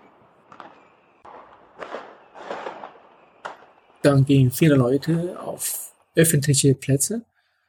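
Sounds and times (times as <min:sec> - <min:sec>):
New Year's Eve firework bangs from rockets and firecrackers: 0:00.0 - 0:04.0
speech: 0:04.0 - 0:07.3.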